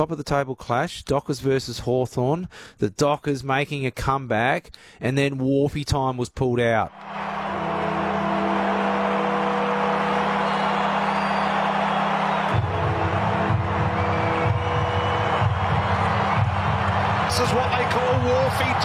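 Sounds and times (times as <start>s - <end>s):
speech: 0.0s - 7.4s
huge stadium crowd roaring: 6.9s - 18.8s.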